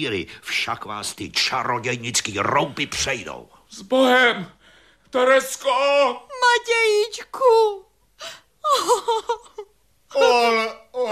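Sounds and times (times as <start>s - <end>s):
speech: 0.0s - 11.0s
woman sobbing and wailing: 8.2s - 11.0s.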